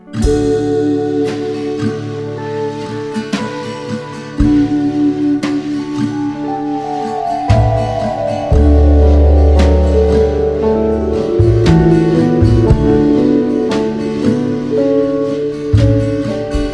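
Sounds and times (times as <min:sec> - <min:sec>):
minimal drums: 0:00.0 - 0:16.7
minimal guitar: 0:00.0 - 0:16.7.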